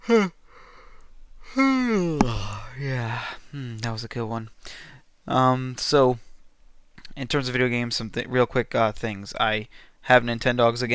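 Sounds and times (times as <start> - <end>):
person yawning: 0.0 - 0.4, 1.5 - 3.0
speech: 0.0 - 0.4, 4.0 - 4.6, 5.3 - 6.3, 7.2 - 10.9.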